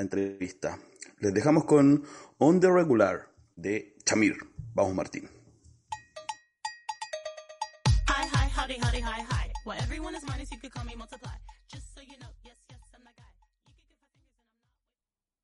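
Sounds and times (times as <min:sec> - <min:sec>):
speech: 0:00.0 - 0:05.4, 0:08.7 - 0:11.4
rhythmic cowbell strikes in a pop song: 0:05.9 - 0:11.7
pop song with bass-heavy beat: 0:07.8 - 0:14.6.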